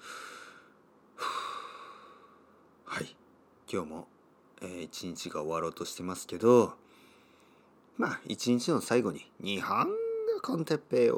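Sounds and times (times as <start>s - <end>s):
deep calming airy hissing breaths: 0.0s - 2.6s, 6.8s - 7.8s
speech: 3.0s - 6.8s, 8.0s - 11.1s.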